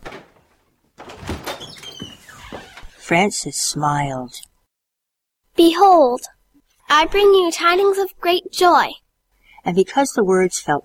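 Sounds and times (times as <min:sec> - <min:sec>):
door creaking open: 0:00.0 - 0:03.2
speech: 0:03.1 - 0:04.5, 0:05.6 - 0:09.0, 0:09.6 - 0:10.8.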